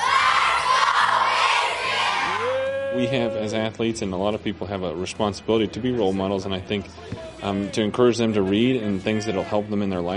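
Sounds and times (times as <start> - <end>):
stadium crowd at an American football game cheering after a touchdown: 0.0 - 3.6
speech: 3.0 - 10.1.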